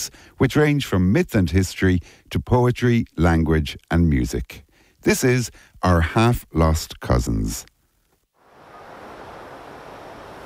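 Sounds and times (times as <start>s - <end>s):
speech: 0.0s - 7.7s
sea waves surging below a granite clifftop in Galicia northwest Spain: 8.4s - 10.4s.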